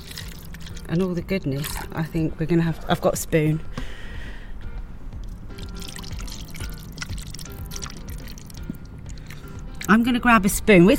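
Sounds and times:
thick miso liquid pouring from a small handmade vessel: 0:00.0 - 0:02.0, 0:05.5 - 0:09.9
speech: 0:00.9 - 0:04.0, 0:09.9 - 0:10.9.

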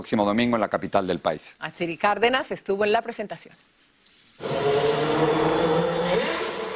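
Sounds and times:
speech: 0:00.0 - 0:03.8
Formula 1 race car engine roaring: 0:04.4 - 0:06.7.

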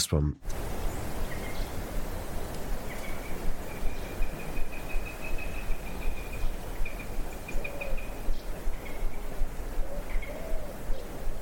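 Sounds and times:
speech: 0:00.0 - 0:00.6
rough rustling outdoor background: 0:00.4 - 0:11.3
adult sparrowhawk calling from a perch: 0:00.7 - 0:11.2.

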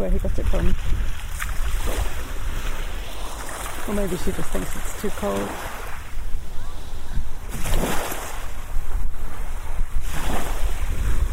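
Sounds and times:
speech: 0:00.0 - 0:01.1, 0:01.8 - 0:02.2, 0:03.9 - 0:05.8
light wind rumble on the microphone: 0:00.0 - 0:11.3
small waves lapping against the shore: 0:00.0 - 0:11.3.

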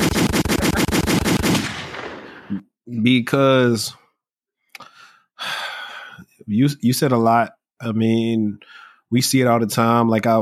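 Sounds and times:
automatic weapon gunfire sound effect: 0:00.0 - 0:02.4
speech: 0:03.0 - 0:04.0, 0:06.5 - 0:10.4.

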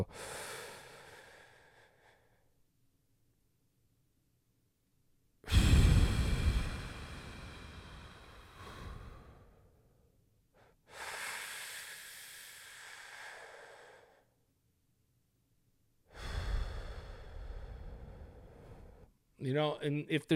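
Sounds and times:
speech: 0:00.0 - 0:00.6, 0:19.4 - 0:20.3
slow deliberate inhale, hold and exhale breathing as a coping exercise for anxiety: 0:00.0 - 0:02.6, 0:05.5 - 0:14.4, 0:16.0 - 0:19.2.

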